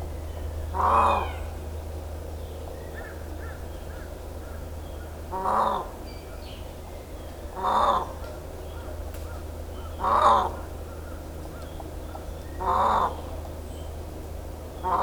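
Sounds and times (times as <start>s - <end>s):
low steady hum: 0.0s - 15.0s
Indian peafowl wailing honks on Miyakojima, Japan: 0.7s - 1.6s, 9.8s - 10.7s, 12.6s - 13.3s, 14.8s - 15.0s.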